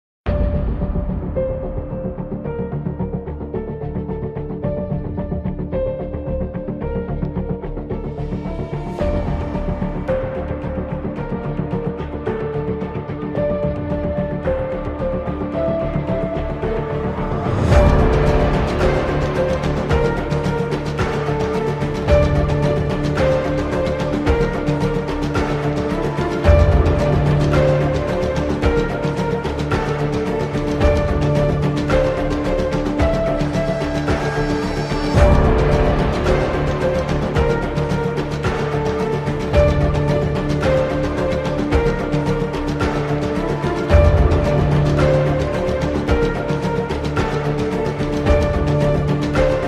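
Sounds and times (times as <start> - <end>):
epic suspense instrumental trailer music: 0.3 - 49.6.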